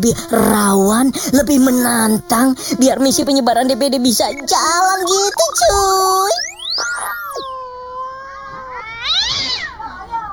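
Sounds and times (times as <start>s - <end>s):
speech: 0.0s - 6.5s
cat yowling loudly: 5.7s - 10.3s.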